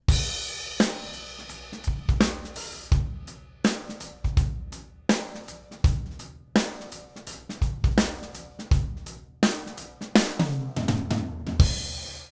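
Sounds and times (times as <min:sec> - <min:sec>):
dry drum: 0:00.0 - 0:12.3.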